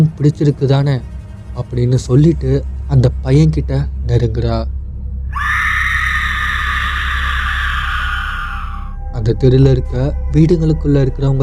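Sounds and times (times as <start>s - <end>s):
speech: 0.0s - 4.8s, 9.2s - 11.4s
low rumble: 0.0s - 11.4s
person screaming in terror outside houses on a street: 5.3s - 9.0s.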